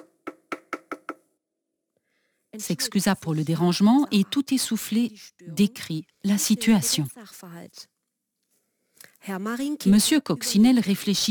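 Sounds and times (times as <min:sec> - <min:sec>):
knocking on the door of a home: 0:00.0 - 0:01.2
speech: 0:02.6 - 0:07.9, 0:09.2 - 0:11.2.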